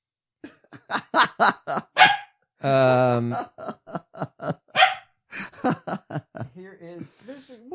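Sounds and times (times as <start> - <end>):
laughter: 0.4 - 2.0, 2.6 - 4.7, 5.3 - 7.5
speech: 0.9 - 1.9
dog yapping: 2.0 - 2.4, 4.7 - 5.1.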